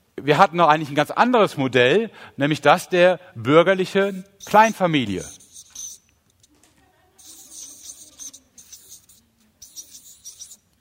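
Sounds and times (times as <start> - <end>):
speech: 0.2 - 5.4
marker pen scratching and squeaking across a writing surface: 3.8 - 6.6, 7.2 - 10.8.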